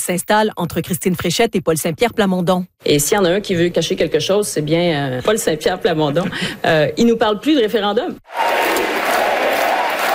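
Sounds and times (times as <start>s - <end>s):
speech: 0.0s - 8.8s
crowd of about 2,000 party supporters cheering at an arena rally: 8.3s - 10.1s.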